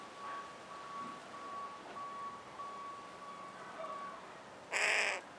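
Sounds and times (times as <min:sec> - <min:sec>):
intermittent vehicle reversing beeps: 0:00.2 - 0:04.1
carrion crow Corvus corone giving a loud rasping caw: 0:04.7 - 0:05.2.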